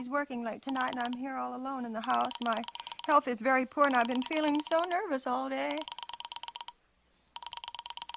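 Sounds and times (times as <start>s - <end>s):
speech: 0.0s - 6.0s
telephone number being dialed with rapid beeping tone pulses: 0.7s - 1.3s, 2.0s - 4.9s, 5.6s - 6.8s, 7.4s - 8.1s.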